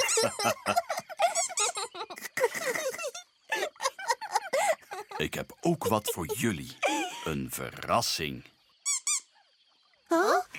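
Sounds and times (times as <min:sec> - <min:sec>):
laughter: 0:00.0 - 0:07.9
speech: 0:00.2 - 0:00.9, 0:05.2 - 0:08.5
rubber bath duck squeaking: 0:08.8 - 0:09.3.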